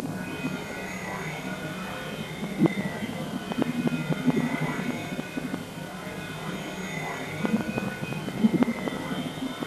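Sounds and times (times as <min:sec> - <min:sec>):
digital distortion noise: 0:00.0 - 0:09.6.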